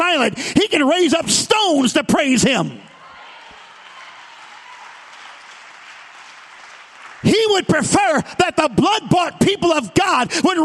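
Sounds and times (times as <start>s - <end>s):
speech: 0.1s - 2.9s, 7.4s - 10.6s
congregation clapping hands: 2.9s - 8.4s.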